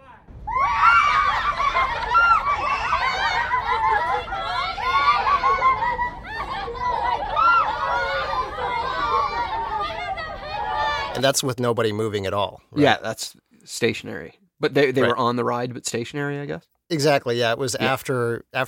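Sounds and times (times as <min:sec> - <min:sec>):
excited laughter and chatter: 0:00.0 - 0:11.2
crowd of many voices screaming and shrieking: 0:00.0 - 0:11.3
speech: 0:11.2 - 0:18.6.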